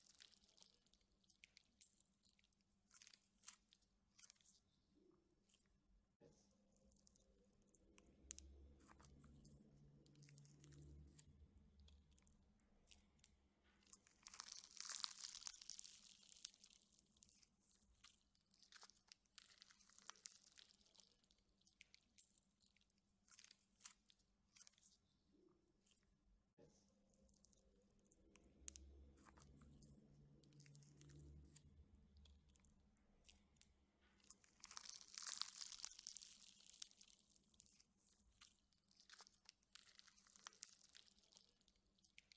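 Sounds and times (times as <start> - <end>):
slime stretched and folded with wet clicks, pops and squelches: 0.0 - 42.3.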